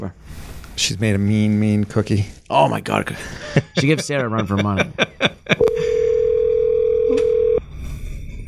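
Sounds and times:
speech: 0:00.0 - 0:05.6
laughter: 0:03.2 - 0:06.0
electronic ringback tone over a phone line: 0:05.6 - 0:07.6.

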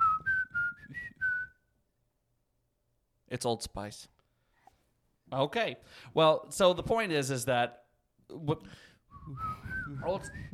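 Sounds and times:
whistled tune: 0:00.0 - 0:01.7, 0:09.1 - 0:10.5
speech: 0:03.3 - 0:04.2, 0:05.3 - 0:10.5.

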